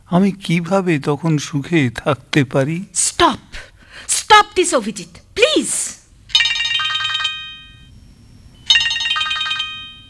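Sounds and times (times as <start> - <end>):
speech: 0.1 - 6.0
telephone ringing with high electronic trilling: 6.3 - 8.0, 8.6 - 10.0.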